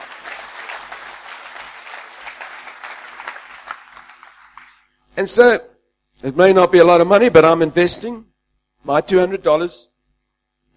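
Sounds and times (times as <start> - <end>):
conference audience clapping: 0.0 - 5.0
speech: 5.2 - 9.9.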